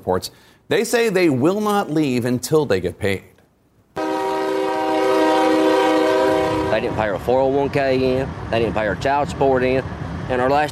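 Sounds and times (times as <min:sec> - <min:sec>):
speech: 0:00.0 - 0:03.3, 0:06.8 - 0:10.6
horn of a coal train in Kentucky: 0:04.0 - 0:07.2
faint low rail rumble: 0:04.0 - 0:10.6.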